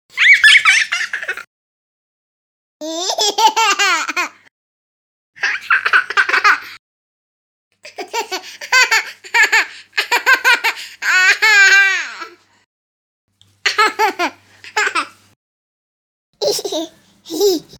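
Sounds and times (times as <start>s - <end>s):
child laughing: 0.1s - 1.5s, 2.8s - 4.4s, 5.4s - 6.8s, 7.9s - 12.4s, 13.7s - 15.2s, 16.4s - 17.7s.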